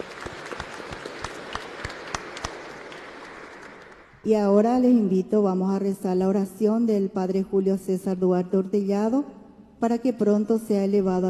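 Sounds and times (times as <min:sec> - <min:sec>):
audience applauding: 0:00.0 - 0:04.2
speech: 0:04.2 - 0:11.2.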